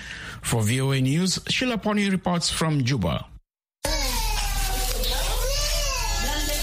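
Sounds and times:
speech: 0:00.5 - 0:03.3
toddler crying in hospital ward: 0:03.8 - 0:06.6.

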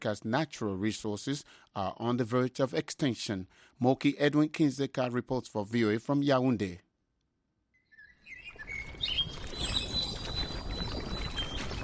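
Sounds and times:
speech: 0:00.0 - 0:06.8
birds chirping and singing in evening park in Yaoundé: 0:07.8 - 0:11.8.

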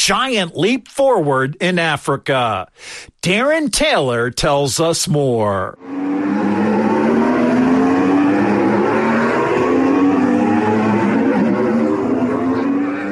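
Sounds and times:
speech: 0:00.0 - 0:06.8
electric Formula E race cars speeding past with high-pitched whine: 0:05.8 - 0:13.1.

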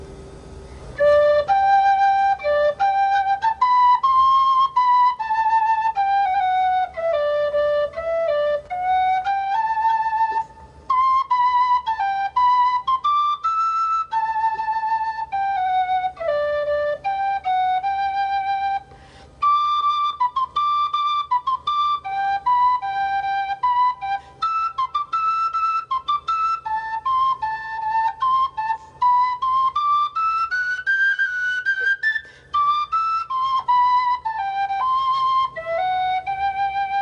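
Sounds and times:
tin whistle playing a lilting melody: 0:00.0 - 0:37.0.

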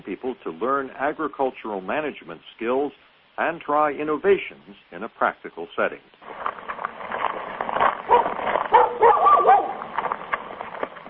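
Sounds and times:
speech: 0:00.1 - 0:06.5
dog barking: 0:08.1 - 0:09.8.

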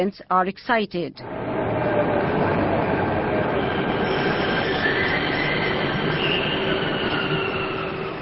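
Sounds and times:
speech: 0:00.0 - 0:01.5
metro train rumbling into a station platform: 0:01.2 - 0:08.2
metro train high metallic wheel squeal: 0:03.5 - 0:08.2.

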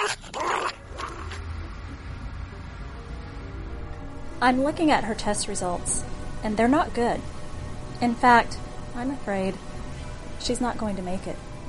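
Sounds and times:
dog yipping and barking: 0:00.0 - 0:01.4
low rumble: 0:00.8 - 0:11.6
speech: 0:04.4 - 0:07.4, 0:08.0 - 0:09.7, 0:10.4 - 0:11.5.

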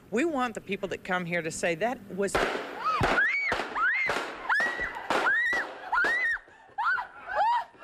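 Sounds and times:
speech: 0:00.1 - 0:02.9
sharp gunshots during a live TV report: 0:02.3 - 0:06.3
high panicked screams: 0:02.8 - 0:07.8.

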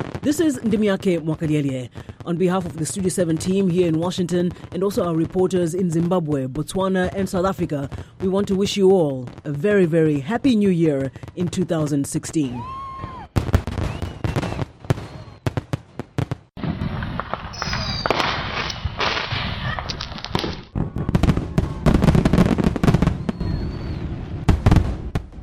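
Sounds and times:
New Year fireworks bangs and pops outdoors: 0:00.0 - 0:25.4
speech: 0:00.2 - 0:12.8
sizzling crackle of fireworks: 0:16.5 - 0:20.8.

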